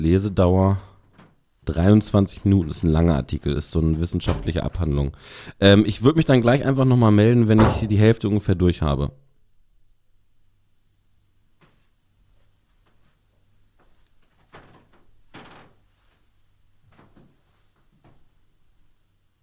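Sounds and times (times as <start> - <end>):
speech: 0.0 - 0.9, 1.6 - 9.2
wooden furniture or door creaking: 0.8 - 5.2, 6.1 - 8.3, 13.8 - 18.4.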